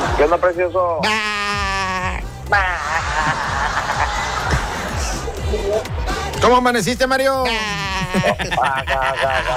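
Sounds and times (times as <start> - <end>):
speech: 0.2 - 1.3, 2.5 - 3.5, 6.4 - 9.5
person imitating goat bleating: 1.0 - 2.8, 7.4 - 8.5
laughter: 2.4 - 5.3, 7.5 - 9.5.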